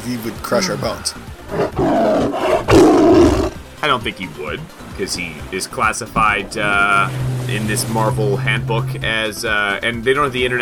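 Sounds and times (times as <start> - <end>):
speech: 0.0 - 10.6
saber-toothed tiger roaring: 1.5 - 3.6.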